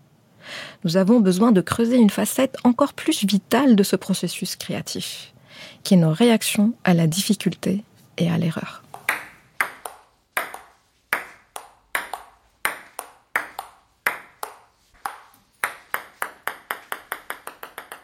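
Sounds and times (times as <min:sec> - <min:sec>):
speech: 0:00.8 - 0:08.8
ping-pong rally ball hits: 0:08.9 - 0:18.0.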